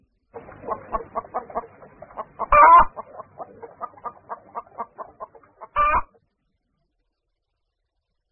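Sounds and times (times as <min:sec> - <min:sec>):
hen clucking: 0:00.4 - 0:06.2.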